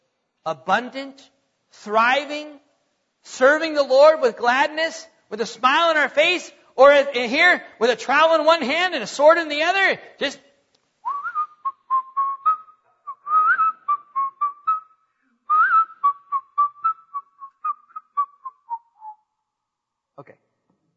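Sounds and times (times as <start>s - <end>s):
speech: 0.4s - 2.6s, 3.2s - 10.5s
person whistling a cheerful tune: 11.0s - 19.2s.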